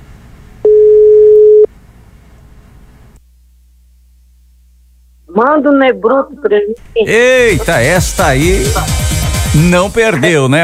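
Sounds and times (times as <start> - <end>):
telephone ringback tone on an outgoing call: 0.6 - 1.7
speech: 5.4 - 9.0, 9.6 - 10.6.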